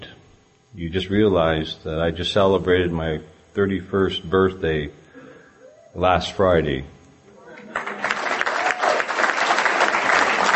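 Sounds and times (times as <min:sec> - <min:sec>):
speech: 0:00.7 - 0:05.0, 0:06.0 - 0:07.0
crowd applauding: 0:07.5 - 0:10.5.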